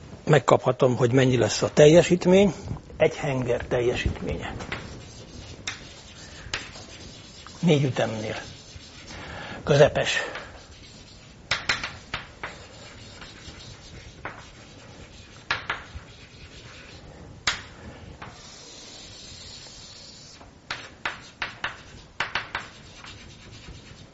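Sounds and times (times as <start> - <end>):
faint hiss: 0.0 - 24.1
speech: 0.3 - 4.8, 7.6 - 8.5, 9.6 - 10.4
scratchy writing strokes on a board: 4.6 - 9.2, 10.2 - 24.1.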